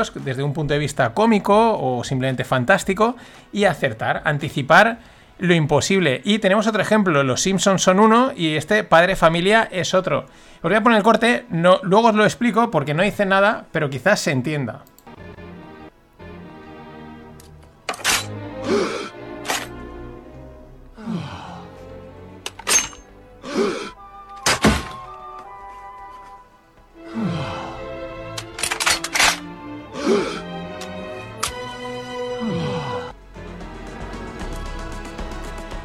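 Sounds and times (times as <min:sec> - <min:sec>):
speech: 0:00.0 - 0:14.9
pistol being loaded with sharp mechanical clacks and thunks: 0:17.4 - 0:18.3, 0:19.4 - 0:19.8, 0:28.3 - 0:29.5, 0:30.8 - 0:31.6
several startled people groaning and moaning: 0:18.5 - 0:19.2, 0:20.9 - 0:22.1, 0:23.4 - 0:24.0, 0:27.0 - 0:28.6, 0:29.8 - 0:31.2, 0:32.2 - 0:33.2.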